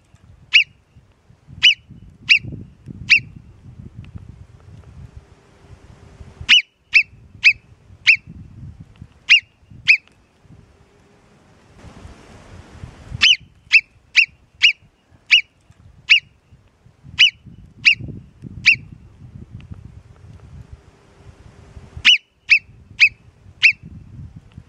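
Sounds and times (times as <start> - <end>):
Alpine marmot Marmota marmota giving shrill whistles: 0.5 - 0.7, 1.6 - 2.5, 3.1 - 3.3, 6.5 - 8.3, 9.3 - 10.1, 13.2 - 15.5, 16.1 - 16.3, 17.2 - 18.9, 22.0 - 23.8.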